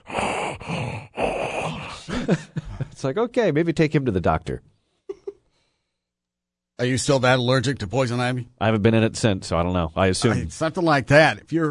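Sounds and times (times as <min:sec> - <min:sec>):
person imitating labored wheezy breathing during an allergic reaction: 0:00.0 - 0:02.2
speech: 0:02.3 - 0:04.7, 0:06.8 - 0:11.6.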